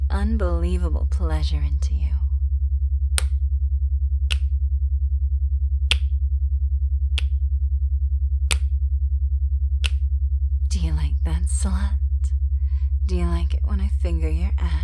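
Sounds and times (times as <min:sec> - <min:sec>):
steady pulsing low hum: 0:00.0 - 0:14.8
speech: 0:00.2 - 0:02.3, 0:14.0 - 0:14.8
sharp crisp finger snapping: 0:03.2 - 0:03.4, 0:04.3 - 0:04.5, 0:05.9 - 0:06.1, 0:07.2 - 0:07.4, 0:08.5 - 0:08.7.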